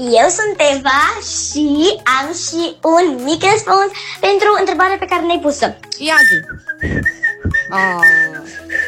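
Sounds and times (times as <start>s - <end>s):
speech: 0.0s - 8.8s
person whistling a short wavering tune: 6.0s - 8.8s.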